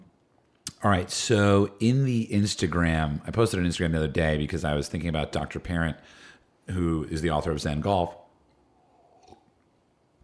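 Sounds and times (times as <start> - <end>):
speech: 0.8 - 8.2
person sipping coffee: 8.5 - 10.2
soft swallow: 8.7 - 9.6.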